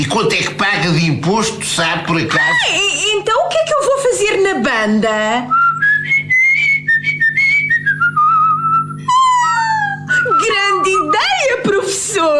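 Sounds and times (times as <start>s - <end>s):
speech: 0.0s - 6.2s, 10.4s - 12.3s
person whistling a short tune: 5.5s - 11.3s.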